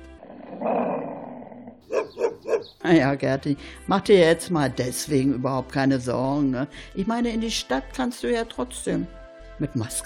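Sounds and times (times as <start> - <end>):
dog growling: 0.1 - 2.7
dog barking: 1.8 - 2.8
speech: 2.8 - 10.0.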